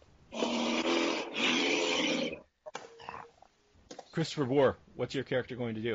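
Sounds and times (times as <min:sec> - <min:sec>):
wolf growling: 0:00.3 - 0:03.3
speech: 0:04.2 - 0:05.9.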